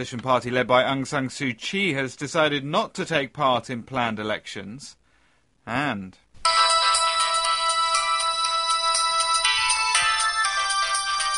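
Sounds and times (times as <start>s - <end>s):
speech: 0.0s - 5.0s, 5.6s - 6.2s
electronic mobile phone ringtone with looping melody: 6.4s - 11.3s.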